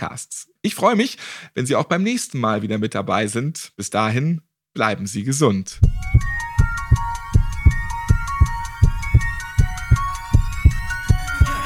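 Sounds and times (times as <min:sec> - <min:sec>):
speech: 0:00.0 - 0:07.0
bright sustained musical backing: 0:05.8 - 0:11.6
heartbeat sound effect in podcast jingle: 0:05.8 - 0:11.6.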